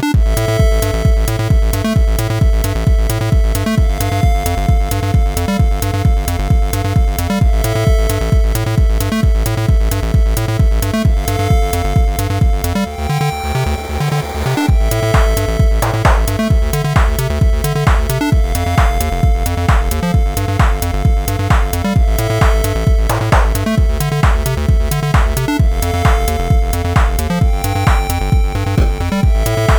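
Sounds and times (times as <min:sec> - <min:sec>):
background music track: 0:00.2 - 0:29.7.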